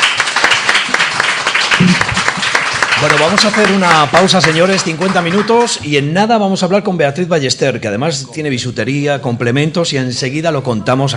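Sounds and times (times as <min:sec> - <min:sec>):
studio audience clapping: 0:00.0 - 0:05.9
speech: 0:03.0 - 0:11.1.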